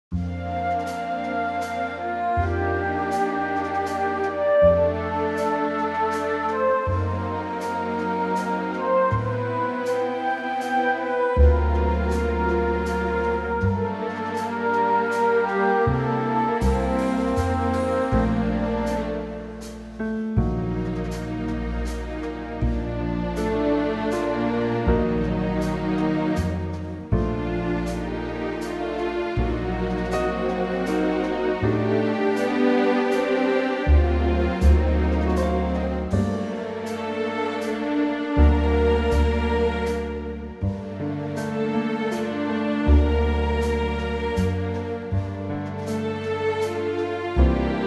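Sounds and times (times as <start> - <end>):
orchestral music in Bb: 0.1 - 47.8.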